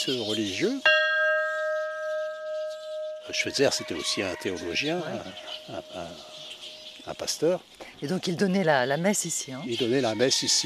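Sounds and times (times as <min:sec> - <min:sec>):
speech: 0:00.0 - 0:01.0, 0:03.3 - 0:06.4, 0:07.0 - 0:10.6
large bell ringing at a historic mission site museum: 0:00.0 - 0:07.4.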